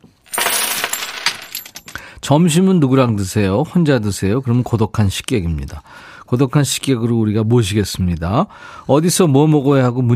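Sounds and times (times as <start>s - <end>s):
coin dropping and rattling against a hard surface: 0.2s - 2.0s
speech: 2.3s - 10.1s.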